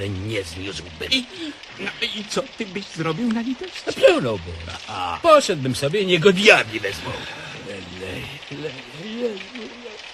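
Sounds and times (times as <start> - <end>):
speech: 0.0 - 9.8
steady rain falling: 0.0 - 10.1.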